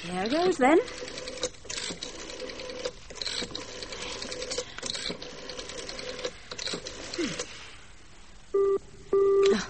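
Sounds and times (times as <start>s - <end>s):
speech: 0.0s - 1.1s
telephone busy signal beeps: 8.6s - 9.5s.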